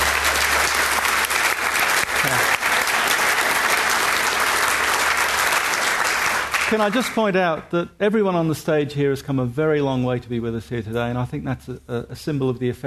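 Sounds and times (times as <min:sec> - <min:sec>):
sustained applause from a large audience: 0:00.0 - 0:07.4
speech: 0:06.7 - 0:12.8.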